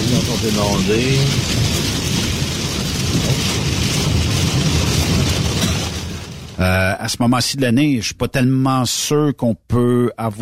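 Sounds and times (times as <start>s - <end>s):
heavy rain drumming against a car windshield: 0.0s - 7.2s
speech: 0.4s - 2.3s, 3.2s - 3.8s, 6.6s - 10.4s.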